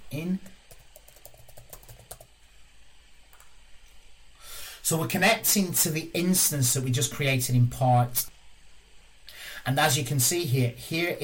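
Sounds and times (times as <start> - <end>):
speech: 0.1 - 0.6, 4.9 - 8.3, 9.6 - 11.2
typing a password on a computer keyboard: 0.7 - 2.3.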